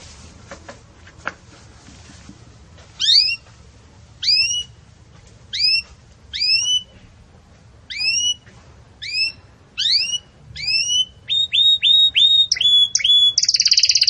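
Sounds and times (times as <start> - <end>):
Belgian canary upslurred whistled calls in campainha style: 3.0 - 3.4, 4.2 - 4.8, 5.5 - 6.9, 7.9 - 8.4, 9.0 - 14.0.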